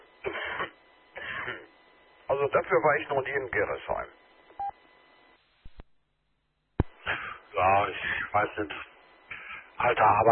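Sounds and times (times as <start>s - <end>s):
person clearing throat: 0.2s - 1.7s
speech: 1.5s - 1.7s, 2.3s - 4.2s, 7.7s - 8.9s, 9.8s - 10.3s.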